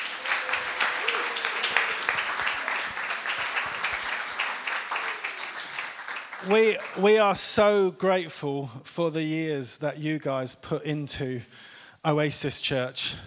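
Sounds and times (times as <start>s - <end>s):
audience applauding: 0.0s - 7.4s
speech: 6.4s - 13.2s.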